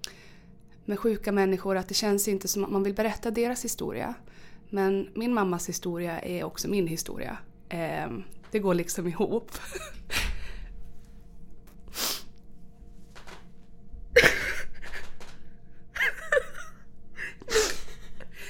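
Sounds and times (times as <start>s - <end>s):
speech: 0.9s - 10.2s
person crying with tearful sobbing: 9.5s - 10.6s, 14.1s - 15.3s, 15.9s - 18.4s.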